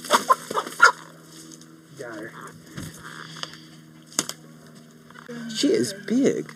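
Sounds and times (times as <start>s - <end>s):
large Brahma chicken clucking: 0.0s - 1.0s
low steady hum: 0.0s - 6.5s
speech: 5.6s - 6.5s.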